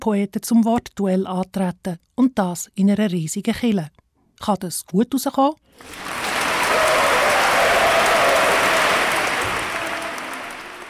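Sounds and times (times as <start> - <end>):
speech: 0.0 - 6.3
large audience applauding in a full church: 5.8 - 10.8.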